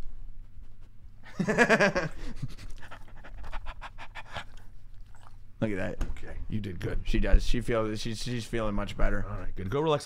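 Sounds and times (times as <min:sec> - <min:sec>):
speech: 0:01.4 - 0:02.7, 0:05.6 - 0:10.0
female dog panting: 0:02.2 - 0:05.5.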